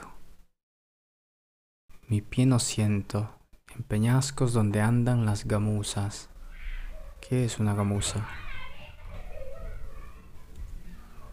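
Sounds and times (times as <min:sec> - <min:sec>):
speech: 0:02.1 - 0:06.3, 0:07.2 - 0:08.4
children shouting while playing in the street: 0:08.0 - 0:11.3.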